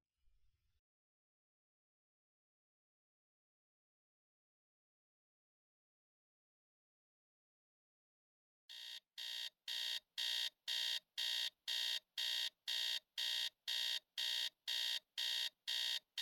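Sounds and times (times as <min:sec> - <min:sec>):
alarm clock beeping: 0:08.7 - 0:16.1.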